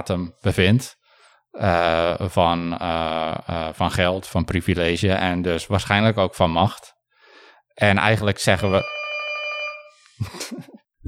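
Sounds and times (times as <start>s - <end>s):
speech: 0.0s - 7.0s, 7.8s - 9.0s, 10.2s - 11.0s
doorbell ringing with a bright electronic tone: 8.6s - 10.0s.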